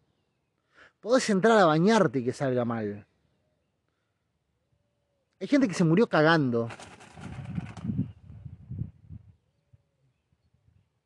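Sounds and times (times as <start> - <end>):
speech: 1.0 - 3.1, 5.4 - 6.9
bird taking off in a flurry of wing flaps: 6.6 - 8.4.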